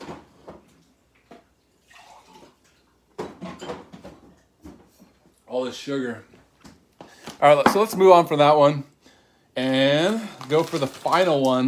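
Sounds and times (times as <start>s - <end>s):
water pouring into a glass: 1.6s - 3.0s
speech: 5.5s - 6.3s, 7.4s - 8.9s, 9.6s - 11.6s.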